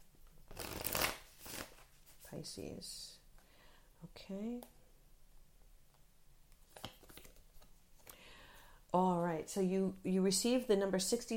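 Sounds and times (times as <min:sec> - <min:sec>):
deck of cards shuffled for a card reading: 0:00.4 - 0:02.3, 0:06.5 - 0:08.1
speech: 0:02.3 - 0:03.2, 0:04.0 - 0:04.8, 0:08.9 - 0:11.3.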